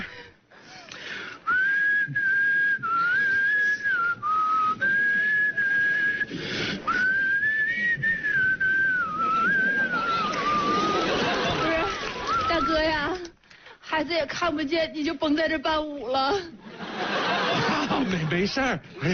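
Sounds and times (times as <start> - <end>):
person whistling a tune: 1.5 - 11.0
laughter: 9.0 - 12.7, 16.3 - 19.1
speech: 14.2 - 17.2, 18.0 - 19.1.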